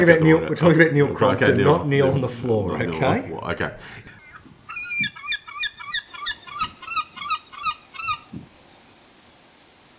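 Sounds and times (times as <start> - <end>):
speech: 0.0 - 4.2
seagull squawking with harsh nasal cries: 4.1 - 8.4.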